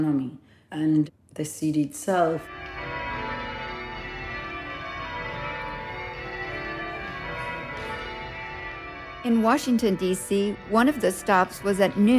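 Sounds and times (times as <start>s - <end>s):
speech: 0.0s - 2.7s, 9.2s - 12.1s
church bells rung by a society of bell ringers at a cathedral: 2.4s - 12.1s.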